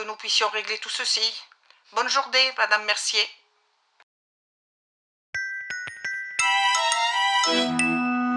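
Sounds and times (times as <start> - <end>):
speech: 0.1 - 3.4
laptop notification dings in a hotel room: 5.4 - 8.2.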